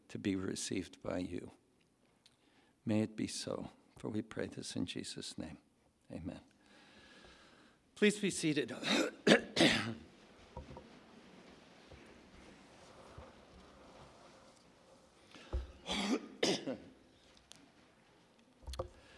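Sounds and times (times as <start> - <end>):
speech: 0.1 - 1.6, 2.9 - 6.5, 8.0 - 10.1
person clearing throat in harsh raspy bursts: 8.8 - 10.0, 15.8 - 17.0.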